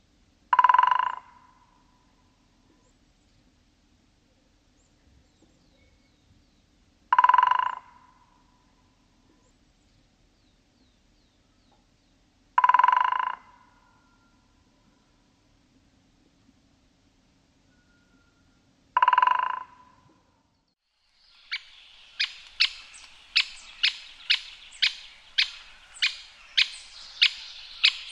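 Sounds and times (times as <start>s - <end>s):
great spotted woodpecker: 0.5s - 1.6s, 7.1s - 8.2s, 12.6s - 13.8s, 19.0s - 20.0s, 21.1s - 28.0s.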